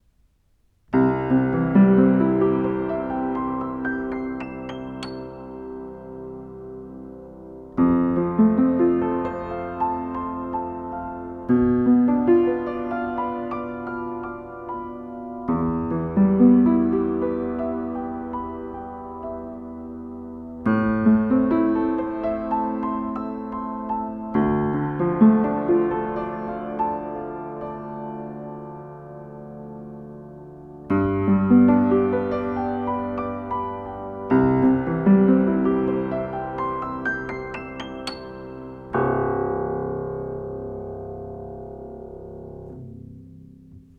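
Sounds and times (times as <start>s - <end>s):
piano with open lid recorded from inside: 0.0s - 43.9s.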